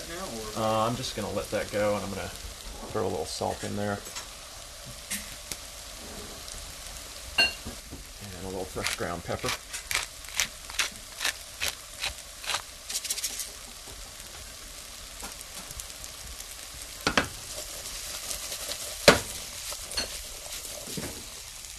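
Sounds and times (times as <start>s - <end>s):
potatoes frying in a pan: 0.0s - 21.7s
speech: 0.6s - 4.2s, 8.4s - 9.8s
clicks and scrapes of stirring in a pan: 8.7s - 14.0s, 17.0s - 21.7s.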